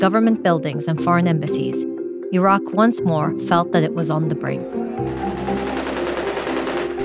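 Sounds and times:
speech: 0.0 - 5.4
rapid gunfire from street clashes in Iraq: 4.9 - 7.0.

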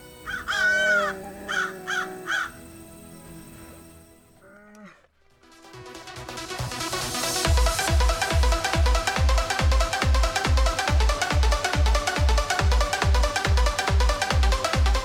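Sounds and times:
music: 0.0 - 4.4, 5.1 - 15.0
harsh raspy crow caws: 0.2 - 2.7.

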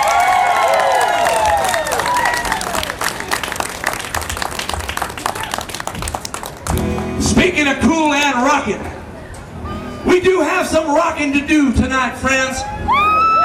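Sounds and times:
scattered cheers and whistles: 0.0 - 3.0, 12.6 - 13.4
audience applause: 0.0 - 8.3
speech: 7.6 - 9.0, 10.1 - 13.0.

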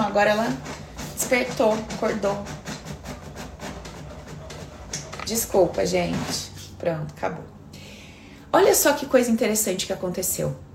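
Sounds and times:
printer printing a page: 0.0 - 6.7
speech: 0.2 - 2.6, 5.3 - 7.5, 8.5 - 10.7.

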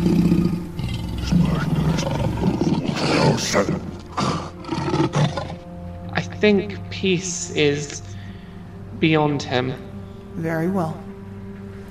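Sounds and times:
big cat roaring: 0.0 - 5.6
speech: 3.4 - 3.8, 6.4 - 8.0, 9.0 - 11.0.

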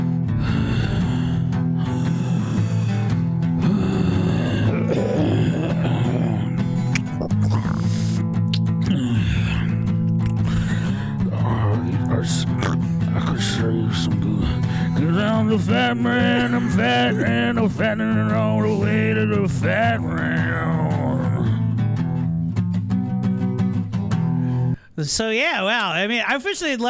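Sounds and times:
labored heavy breathing and gasping: 0.0 - 11.3, 14.4 - 15.0
dense continuous music: 0.0 - 24.9
speech: 15.5 - 20.8, 25.0 - 26.8.

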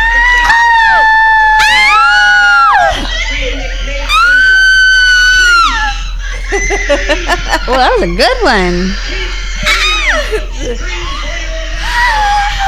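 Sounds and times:
audience screaming at a horror film screening: 0.0 - 12.6
laughter: 0.0 - 12.6
speech: 7.7 - 9.1.

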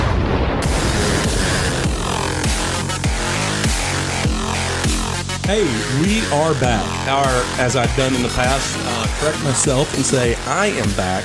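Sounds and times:
bomb explosion sound effect with deep booms: 0.0 - 4.5
speech: 5.5 - 11.2.

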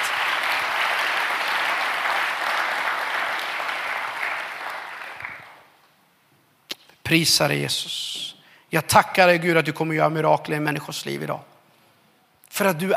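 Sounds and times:
room full of people applauding: 0.0 - 5.7
speech: 7.1 - 11.5, 12.6 - 12.9.

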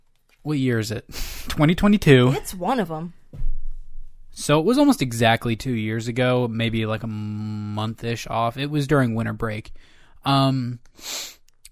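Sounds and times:
speech: 0.4 - 3.2, 4.4 - 11.4
sharp sniff into the microphone: 1.1 - 1.5, 10.9 - 11.5.

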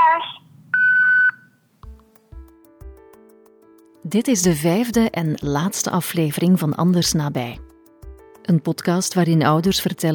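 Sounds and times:
voicemail beep tone: 0.0 - 1.6
speech: 4.1 - 7.7, 8.5 - 10.1.

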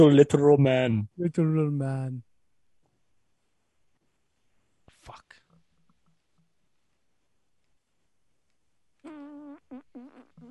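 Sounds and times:
speech: 0.0 - 2.3
loud buzzy fart: 9.0 - 10.4.

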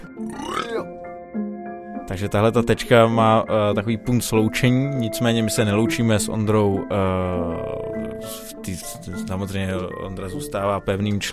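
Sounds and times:
loud drawn-out burp: 0.2 - 1.0
speech: 2.1 - 11.3.

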